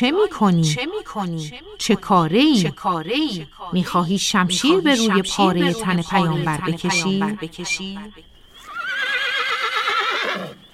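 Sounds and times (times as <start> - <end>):
speech: 0.0 - 8.3
horse whinnying: 8.6 - 10.6.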